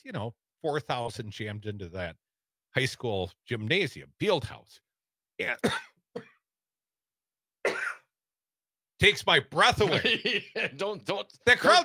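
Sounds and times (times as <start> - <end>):
speech: 0.0 - 4.8, 5.4 - 6.3, 9.0 - 11.8
person coughing from choking on saliva: 5.6 - 6.4, 7.6 - 8.1
laughter: 9.7 - 11.0.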